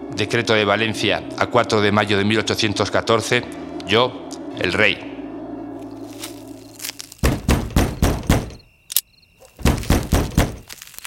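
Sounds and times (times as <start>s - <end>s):
speech: 0.2s - 5.1s
thin insect-like chirp: 5.6s - 7.2s, 8.4s - 9.6s
heavy knocking on a door: 7.2s - 8.6s, 9.6s - 10.6s.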